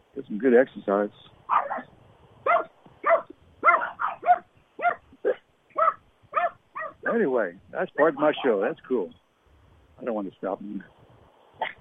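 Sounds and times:
speech: 0.2s - 1.9s, 7.2s - 9.2s, 10.0s - 11.0s
dogs barking at each other: 1.5s - 7.3s, 7.9s - 8.6s.

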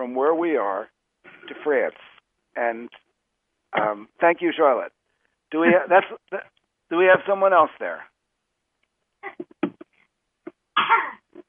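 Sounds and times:
speech: 0.0s - 3.0s, 3.7s - 8.1s, 10.8s - 11.4s
babies coughing: 10.8s - 11.3s.

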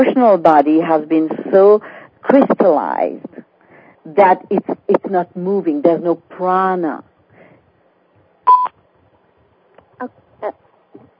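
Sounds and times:
speech: 0.0s - 3.3s, 4.0s - 7.1s, 10.0s - 10.6s
electronic beep on a phone line signalling an incoming caller: 8.5s - 8.7s.

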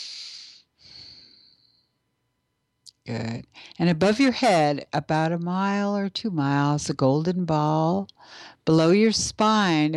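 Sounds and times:
deep breath during a relaxation exercise: 0.0s - 1.9s
speech: 3.1s - 9.9s.

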